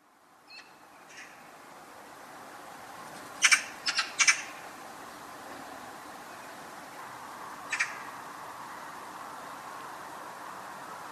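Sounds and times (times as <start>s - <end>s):
quiet background hiss: 0.0s - 11.1s
Eurasian magpie Pica pica giving a harsh chattering call: 0.5s - 1.4s, 3.4s - 4.6s, 7.7s - 8.1s.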